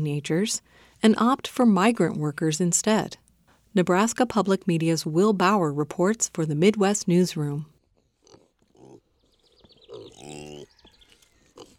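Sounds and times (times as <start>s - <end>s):
speech: 0.0s - 7.7s
Kunekune pigs grunting and squealing on a farm: 8.0s - 11.7s
birds chirping: 8.2s - 11.7s.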